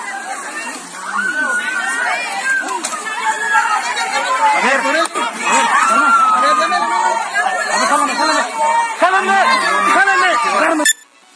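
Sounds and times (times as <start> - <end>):
crowd chatter during suspension bridge collapse: 0.0 - 11.3
people shouting: 1.0 - 10.8.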